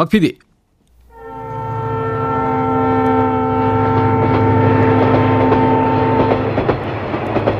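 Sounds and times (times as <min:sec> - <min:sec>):
speech: 0:00.0 - 0:00.4
old steam train whistle blowing: 0:01.0 - 0:06.7
old train rumbling and chugging: 0:01.0 - 0:07.5.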